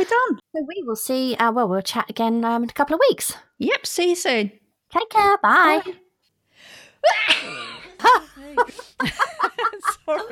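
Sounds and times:
speech: 0:00.0 - 0:06.0, 0:07.0 - 0:10.3
breathy gasps and small vocal sounds: 0:06.5 - 0:07.0
laughter: 0:07.0 - 0:10.3
loud human sneeze: 0:07.1 - 0:08.0.

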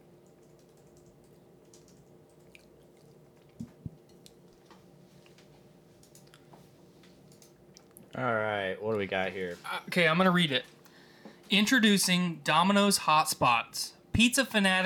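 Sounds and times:
quiet low hum: 0:00.0 - 0:14.8
typing on a computer keyboard: 0:00.2 - 0:02.5, 0:06.0 - 0:06.3, 0:07.3 - 0:07.6
speech: 0:08.1 - 0:10.8, 0:11.5 - 0:14.8.

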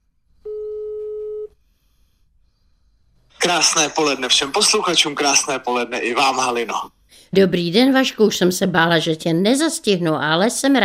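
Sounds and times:
electronic telephone tone as a call is placed: 0:00.4 - 0:01.6
speech: 0:03.4 - 0:10.8.

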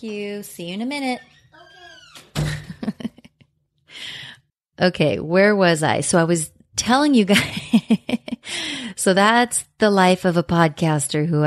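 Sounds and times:
speech: 0:00.0 - 0:01.4, 0:04.8 - 0:08.3, 0:09.0 - 0:11.4
door knocks and rattles as it settles: 0:01.1 - 0:03.0
door swinging shut with a heavy thud: 0:01.4 - 0:03.0.

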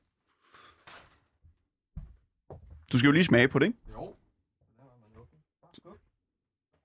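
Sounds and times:
door knocking thuds as it moves: 0:01.9 - 0:02.9
speech: 0:02.9 - 0:04.2.

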